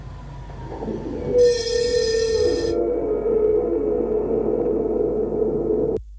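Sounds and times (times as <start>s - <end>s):
shrill metallic tram wheel squeal: 0.0s - 4.1s
tram rumbling past outside the window: 0.0s - 6.0s.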